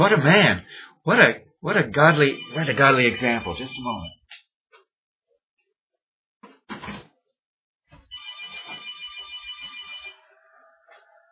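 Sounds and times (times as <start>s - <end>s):
speech: 0.0s - 4.2s
telephone ringing with a warbling electronic trill: 2.0s - 4.2s, 8.1s - 10.2s.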